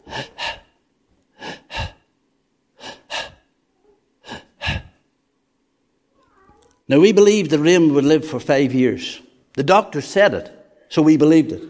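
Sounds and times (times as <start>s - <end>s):
person imitating a sick child's labored breathing: 0.0s - 2.2s, 2.8s - 3.6s, 4.2s - 5.1s
speech: 6.9s - 11.6s.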